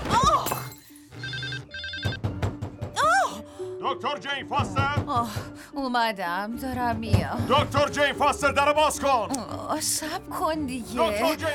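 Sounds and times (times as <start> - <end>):
telephone ringing in short trilling bursts: 1.1 - 2.4
thumps and clatter: 2.0 - 3.0, 4.6 - 5.6, 6.6 - 8.1
speech: 3.9 - 11.5.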